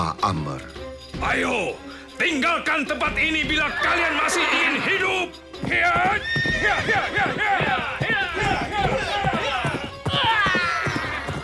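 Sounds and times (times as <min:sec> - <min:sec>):
speech: 0:00.0 - 0:09.1
ridden horse galloping and leaping over a trench: 0:01.1 - 0:11.4
ridden horse whinnying shrilly: 0:03.5 - 0:11.4.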